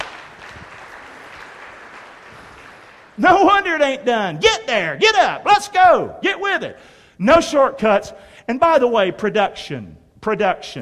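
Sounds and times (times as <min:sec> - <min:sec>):
audience clapping: 0:00.0 - 0:03.7
speech: 0:03.2 - 0:10.8.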